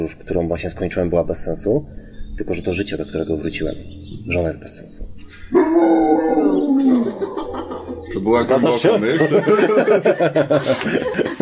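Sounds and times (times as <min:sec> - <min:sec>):
speech: 0:00.0 - 0:07.4, 0:08.1 - 0:11.3
dog whining and howling: 0:05.5 - 0:08.5
laughter: 0:05.6 - 0:11.3.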